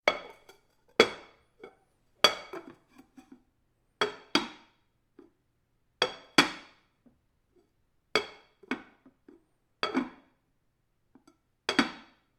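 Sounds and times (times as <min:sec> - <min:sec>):
porcelain bowl on counter: 0:00.0 - 0:05.4, 0:08.1 - 0:10.3.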